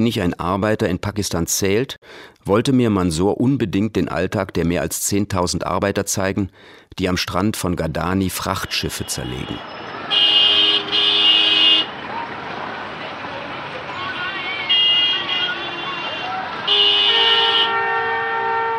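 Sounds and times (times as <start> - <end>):
speech: 0.0 - 10.7
car horns honking in busy street traffic: 8.6 - 18.7.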